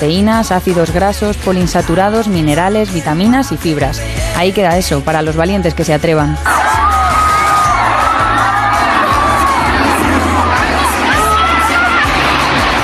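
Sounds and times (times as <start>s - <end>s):
speech: 0.0s - 6.6s
children's high-pitched yells and cheers: 6.3s - 12.8s
large crowd screaming and shouting at a wave pool: 6.3s - 12.8s
loud roaring wash of water in a wave pool: 8.5s - 12.8s.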